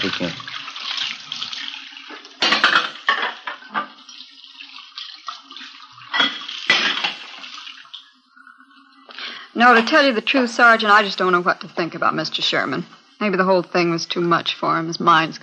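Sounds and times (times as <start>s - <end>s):
speech: 0.0s - 0.5s, 9.6s - 15.4s
water running steadily into a kitchen sink: 0.0s - 15.4s
dishes and cutlery clinking and clattering while washing in a kitchen sink: 2.1s - 4.0s, 6.1s - 7.3s.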